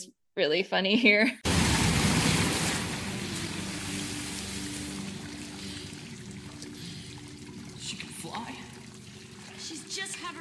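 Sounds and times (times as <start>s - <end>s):
speech: 0.0s - 1.5s
loud splash of person bursting up out of pool water: 1.5s - 5.9s
rushing churning pool water wash: 1.5s - 10.4s.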